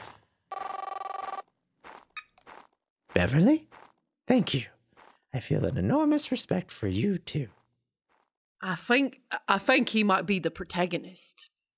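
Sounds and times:
loud telephone bell ringing: 0.5s - 1.5s
speech: 3.2s - 7.6s, 8.6s - 11.7s.

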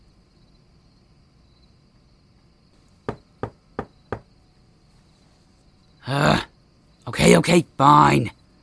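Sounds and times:
firm knocking on a door: 3.0s - 4.4s
speech: 6.1s - 6.4s, 7.2s - 8.4s.

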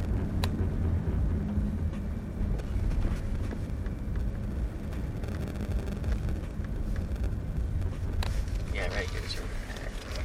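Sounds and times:
car engine droning while driving: 0.0s - 10.2s
road noise: 0.0s - 10.2s.

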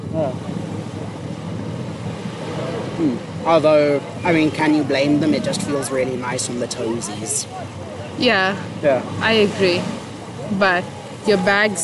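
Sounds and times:
sea waves washing onto a beach: 0.0s - 11.8s
windy rumble: 0.0s - 11.8s
speech: 0.2s - 0.5s, 3.0s - 11.8s.

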